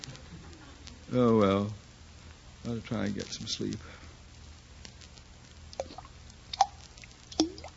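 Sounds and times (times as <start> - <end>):
speech: 1.1 - 1.8, 2.6 - 4.0
water dripping: 5.7 - 7.7.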